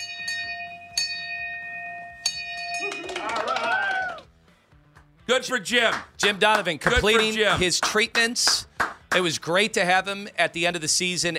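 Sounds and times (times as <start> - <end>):
bell struck to mark a patient's last radiation treatment: 0.0 - 3.4
speech: 5.3 - 11.3.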